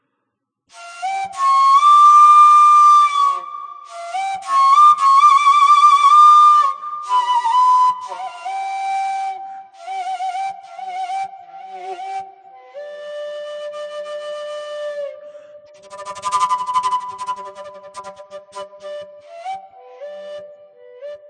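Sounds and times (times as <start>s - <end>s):
transverse flute playing: 0.7s - 21.2s.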